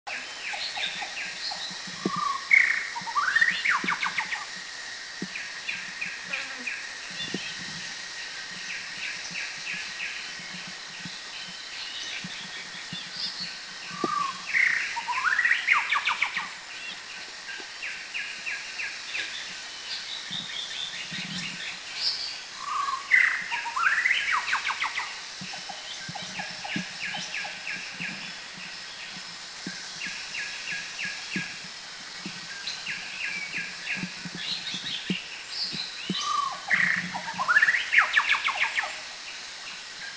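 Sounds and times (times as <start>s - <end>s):
White-rumped Shama singing: 0.1s - 4.6s, 8.5s - 31.6s, 32.5s - 39.0s.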